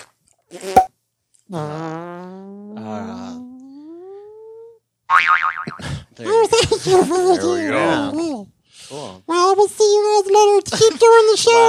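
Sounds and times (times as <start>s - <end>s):
speech: 0.5s - 0.9s, 1.5s - 1.9s, 6.2s - 8.4s, 9.6s - 11.6s
mouth fart noise mimicking a pogo stick: 1.5s - 2.9s.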